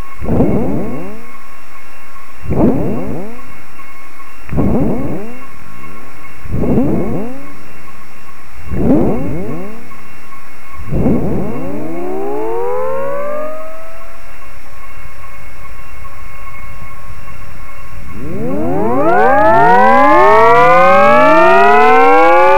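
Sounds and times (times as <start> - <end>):
plasma frequency sweep: 0.2 - 1.3, 2.5 - 3.4, 4.5 - 5.5, 6.5 - 7.5, 8.7 - 9.9, 10.9 - 14.3, 18.0 - 22.5.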